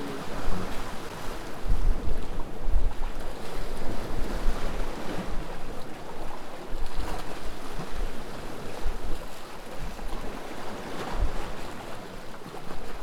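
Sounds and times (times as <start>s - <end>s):
ocean surf rolling and washing: 0.0s - 1.7s
gusty wind rumbling across the microphone: 0.0s - 13.0s.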